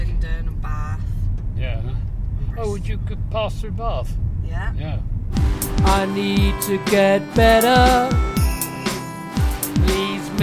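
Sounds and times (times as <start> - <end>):
engine and road rumble inside a moving car: 0.0 - 9.2
speech: 2.7 - 8.3.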